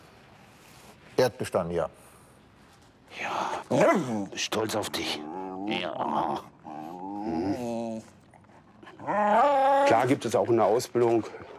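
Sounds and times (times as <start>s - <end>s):
speech: 1.2s - 2.1s, 3.1s - 6.5s, 9.9s - 11.5s
detection dog in training whining: 5.0s - 10.3s.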